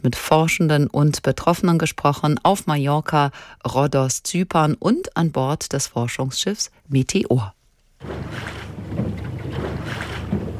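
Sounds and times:
speech: 0:00.0 - 0:09.2
catamaran gliding over water: 0:08.0 - 0:10.5.

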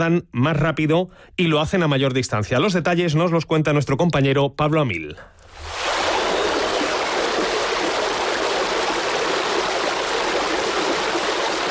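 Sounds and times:
speech: 0:00.0 - 0:05.3
river water rushing with splashing and churning: 0:05.6 - 0:11.7.

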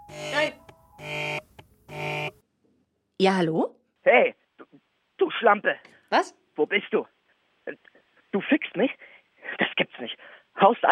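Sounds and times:
telephone ringing with buzzy electronic bursts: 0:00.0 - 0:02.4
speech: 0:03.2 - 0:04.4, 0:05.2 - 0:10.9.

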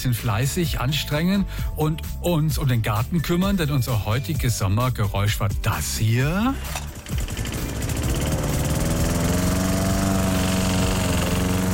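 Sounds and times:
speech: 0:00.0 - 0:07.3
lawn mower engine starting and running: 0:06.2 - 0:11.7.

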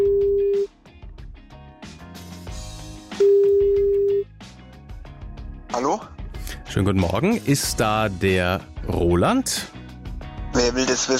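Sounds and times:
telephone ringing tone: 0:00.0 - 0:00.7, 0:03.2 - 0:04.3
speech: 0:05.8 - 0:06.1, 0:06.7 - 0:09.8, 0:10.6 - 0:11.1.

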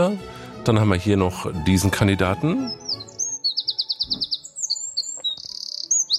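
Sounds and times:
speech: 0:00.0 - 0:03.0
Eurasian wren singing a rapid trilling song: 0:02.4 - 0:06.1.

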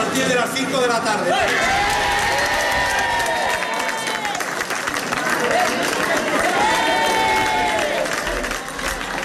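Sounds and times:
speech: 0:00.1 - 0:01.9
townspeople whooping and shouting: 0:01.4 - 0:04.5, 0:06.5 - 0:08.1
townspeople applauding: 0:01.5 - 0:09.2.

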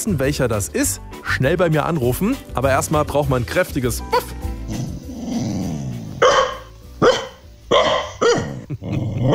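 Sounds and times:
speech: 0:00.0 - 0:04.3
dog growling: 0:04.6 - 0:06.3, 0:07.8 - 0:09.3
dog barking: 0:06.2 - 0:08.6.

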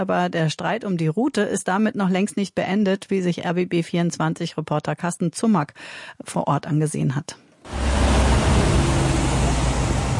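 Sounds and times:
speech: 0:00.0 - 0:07.8
columns of cars passing through town at 30 km/h: 0:07.7 - 0:10.1
heavy trucks driving through town at 30 km/h: 0:07.7 - 0:10.1.

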